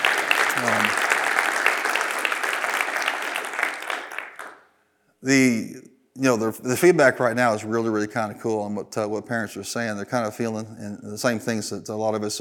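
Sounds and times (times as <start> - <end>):
room full of people applauding: 0.0 - 4.6
speech: 5.2 - 12.3.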